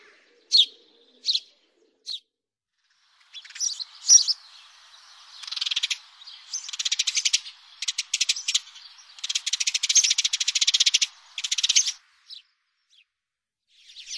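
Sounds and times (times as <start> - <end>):
house sparrow chattering: 0.5 - 1.5, 3.3 - 12.4.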